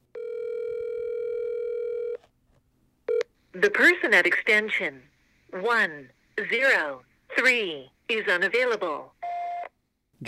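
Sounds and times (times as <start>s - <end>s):
steady electronic telephone tone of unanswered call: 0.1s - 2.2s, 9.2s - 9.7s
speech: 3.6s - 9.2s.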